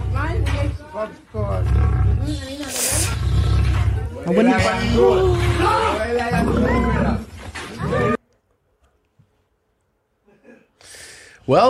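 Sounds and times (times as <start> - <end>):
speech: 1.0 - 3.0, 4.2 - 6.9, 11.5 - 11.6
lion roaring in a played video clip: 1.4 - 8.2.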